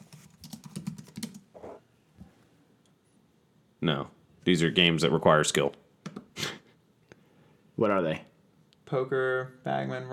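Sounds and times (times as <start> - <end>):
rapid typing on a computer keyboard: 0.0 - 1.4
speech: 3.8 - 5.8, 7.8 - 8.3, 8.9 - 10.1.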